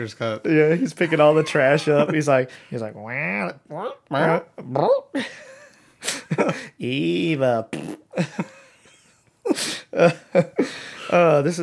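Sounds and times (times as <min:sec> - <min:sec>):
speech: 0:00.0 - 0:08.6, 0:09.5 - 0:11.6
laughter: 0:00.8 - 0:02.4
voice making mouth-imitated fart noises and raspberry: 0:07.6 - 0:08.2.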